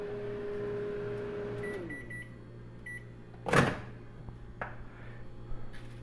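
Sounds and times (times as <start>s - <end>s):
Frigidaire microwave oven humming and winding down: 0.0s - 6.0s.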